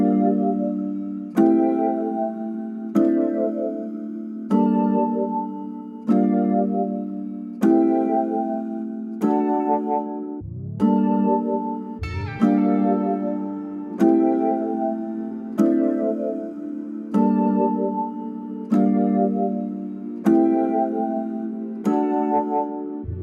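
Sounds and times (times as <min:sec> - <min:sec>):
acoustic piano melody in A minor: 0:00.2 - 0:23.1.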